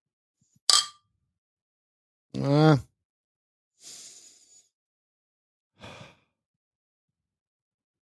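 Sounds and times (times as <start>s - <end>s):
beer glasses clinking in a toast: 0.7s - 1.0s
speech: 2.4s - 2.9s.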